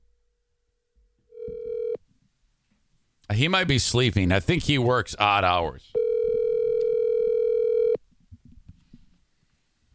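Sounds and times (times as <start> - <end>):
electronic ring tone of an outgoing phone call: 1.3 - 2.0, 6.0 - 8.0
speech: 3.3 - 6.0.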